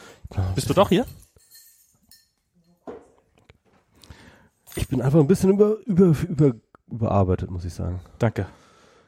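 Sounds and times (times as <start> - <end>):
speech: 0.4 - 1.2, 5.0 - 8.6
glass clinking: 0.6 - 3.2.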